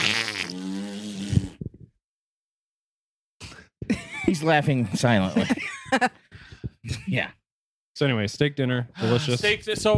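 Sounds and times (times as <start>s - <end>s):
buzzy mouth-made fart noise: 0.0s - 1.9s
speech: 4.2s - 6.2s, 6.9s - 7.4s, 8.0s - 9.9s.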